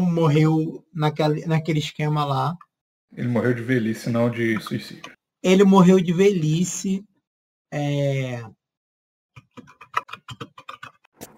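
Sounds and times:
speech: 0.0s - 7.1s, 7.7s - 8.6s
typing on a computer keyboard: 9.4s - 11.1s.

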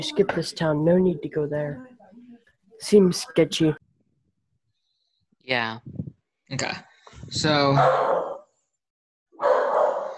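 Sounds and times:
speech: 0.0s - 1.9s, 2.8s - 3.8s, 5.5s - 8.4s
dog barking: 7.8s - 8.5s, 9.4s - 10.1s.

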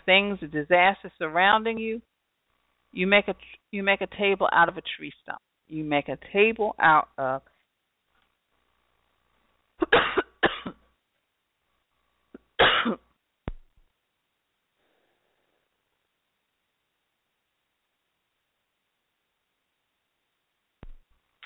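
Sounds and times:
speech: 0.1s - 2.1s, 2.9s - 7.5s, 12.8s - 13.0s
person coughing in harsh throaty bursts: 9.8s - 10.8s, 12.6s - 13.0s.

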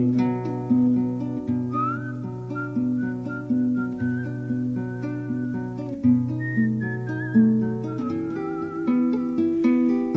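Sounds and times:
plucked string accompaniment: 0.0s - 10.1s
person whistling a melody in a song: 1.6s - 9.6s.

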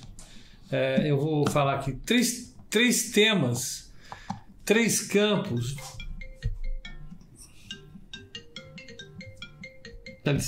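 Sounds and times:
speech: 0.7s - 3.9s, 4.7s - 6.0s, 10.3s - 10.4s
phone ringtone with chiming electronic tones: 5.4s - 10.4s.

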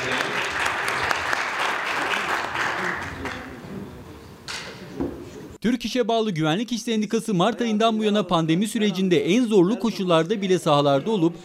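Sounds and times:
audience applause at a union award ceremony honouring journalists: 0.0s - 3.6s
speech: 5.6s - 11.4s.

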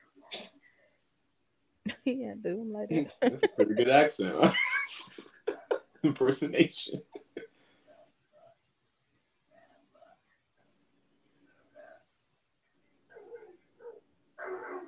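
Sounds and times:
speech: 2.0s - 4.7s, 6.0s - 7.2s
laughter: 2.9s - 7.4s
dog barking: 13.1s - 14.8s.

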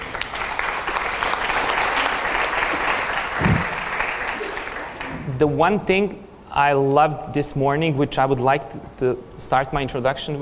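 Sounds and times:
crowd applauding: 0.0s - 5.4s
low thump: 3.4s - 3.8s
speech: 5.4s - 10.4s.

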